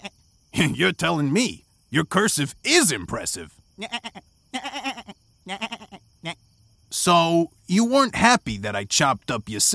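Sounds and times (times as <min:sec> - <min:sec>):
speech: 0:00.6 - 0:09.7
goat bleating: 0:03.8 - 0:06.4.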